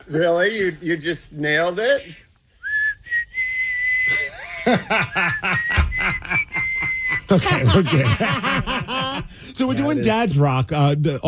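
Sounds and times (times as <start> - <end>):
speech: 0.1 - 2.2, 4.7 - 5.7, 7.3 - 11.2
person whistling a tune: 2.6 - 4.4, 5.5 - 7.3
laughter: 4.1 - 10.0.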